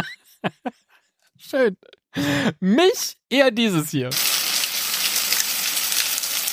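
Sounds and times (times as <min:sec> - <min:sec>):
speech: 0:01.5 - 0:04.3
food sizzling in a frying pan with crackling pops: 0:04.1 - 0:06.5.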